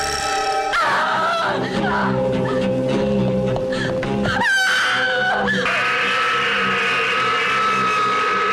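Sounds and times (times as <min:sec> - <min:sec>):
dense dramatic horror-trailer soundtrack: 0:00.0 - 0:08.5
screaming and wailing in a horror film trailer: 0:00.7 - 0:02.2, 0:04.3 - 0:08.5.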